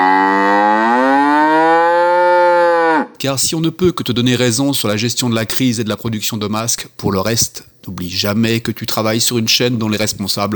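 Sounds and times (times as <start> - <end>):
cow mooing: 0.0 - 3.2
speech: 3.2 - 10.5.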